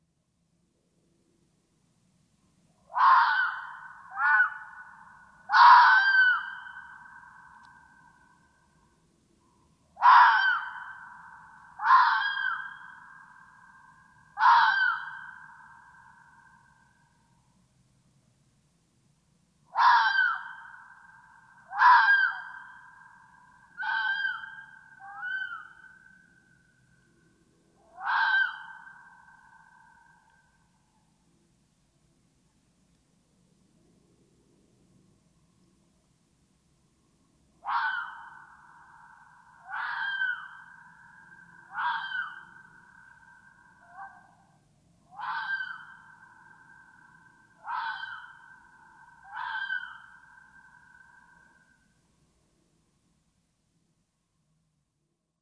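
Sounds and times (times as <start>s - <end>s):
red fox screaming: 2.9s - 7.4s, 10.0s - 13.2s, 14.4s - 15.9s, 19.7s - 25.9s, 27.9s - 30.1s, 37.6s - 44.3s, 45.1s - 51.6s.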